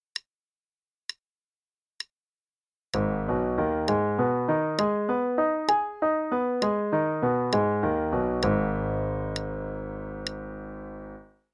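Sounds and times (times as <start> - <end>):
arpeggios in G sharp minor: 3.0 - 11.3.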